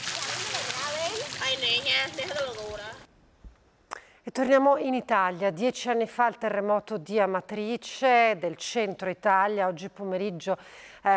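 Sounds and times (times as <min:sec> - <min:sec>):
excited children calling and shouting: 0:00.0 - 0:03.0
water splashing as people and horses wash outdoors: 0:00.0 - 0:03.1
speech: 0:01.6 - 0:03.0, 0:04.2 - 0:11.1.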